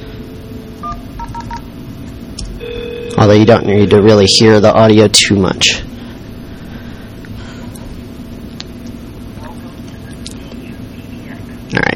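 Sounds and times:
telephone touch-tone dialing beeps calling a phone server: 0:00.8 - 0:01.6
speech: 0:03.2 - 0:05.9.

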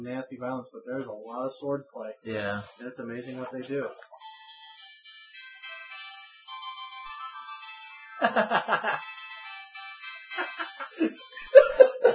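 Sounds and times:
speech: 0:00.0 - 0:04.3, 0:08.2 - 0:09.1, 0:11.0 - 0:11.9
cell phone ringtone with bright electronic melody: 0:03.2 - 0:12.1
people laughing: 0:08.2 - 0:09.1, 0:10.4 - 0:12.1.

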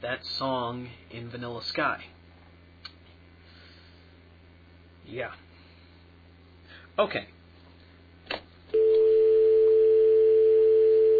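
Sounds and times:
speech: 0:00.0 - 0:02.2, 0:05.0 - 0:05.4, 0:07.0 - 0:07.4
telephone dial tone: 0:08.8 - 0:11.1.

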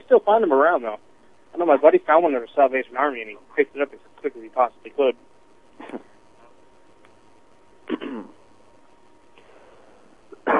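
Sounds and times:
speech: 0:00.1 - 0:06.1, 0:07.9 - 0:08.4
person coughing short rough coughs: 0:05.8 - 0:06.1, 0:07.9 - 0:08.4, 0:10.4 - 0:10.5.

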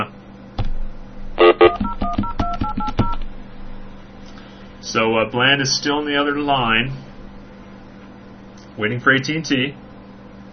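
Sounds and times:
telephone number dialed on a touch-tone phone: 0:01.5 - 0:03.2
speech: 0:04.9 - 0:07.1, 0:08.8 - 0:09.8.

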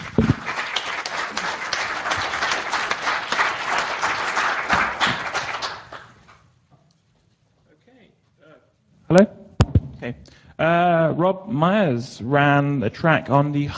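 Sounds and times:
room full of people applauding: 0:00.0 - 0:06.3
speech: 0:09.1 - 0:09.4, 0:10.1 - 0:13.7.

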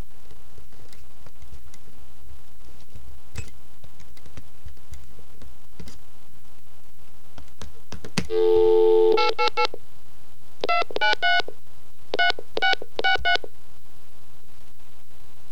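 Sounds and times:
toll-free phone number punched in with touch tones: 0:08.3 - 0:09.8, 0:10.6 - 0:11.5, 0:12.1 - 0:13.5.

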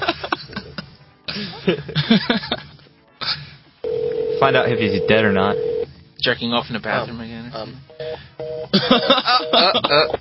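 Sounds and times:
laughter: 0:00.0 - 0:02.7, 0:08.7 - 0:10.1
speech: 0:01.4 - 0:02.5, 0:04.4 - 0:07.8, 0:08.7 - 0:10.1
outgoing phone call ringing tone through a phone line: 0:03.8 - 0:05.9, 0:07.9 - 0:09.8.

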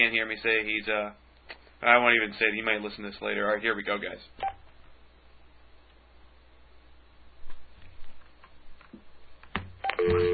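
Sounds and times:
speech: 0:00.0 - 0:01.2, 0:01.8 - 0:04.6
telephone dialing tones: 0:09.8 - 0:10.3.

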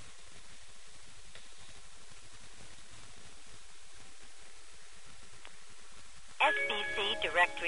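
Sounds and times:
tonal tinny phone-line sound: 0:06.4 - 0:07.6.

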